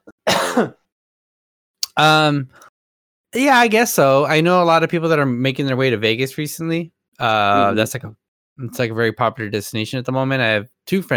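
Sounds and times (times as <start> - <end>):
person clearing throat: 0.0 - 0.8, 7.6 - 7.8
speech: 0.6 - 0.8, 2.0 - 2.7, 3.3 - 11.1.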